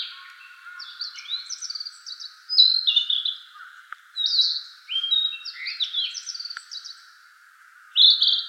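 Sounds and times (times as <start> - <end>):
narcissus flycatcher whistling song: 0.0 - 3.4, 4.2 - 7.0, 8.0 - 8.4.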